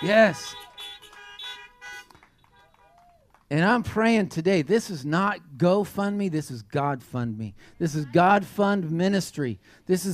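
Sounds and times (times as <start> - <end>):
speech: 0.0 - 0.7, 3.5 - 10.1
several car horns honking: 0.0 - 3.0.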